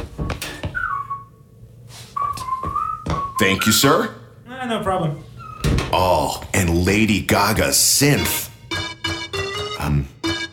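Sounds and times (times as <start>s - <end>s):
man whistling a short melody: 0.8s - 1.3s, 2.2s - 3.6s
speech: 3.4s - 5.3s, 5.9s - 8.5s
sharp percussive hits: 8.2s - 10.5s.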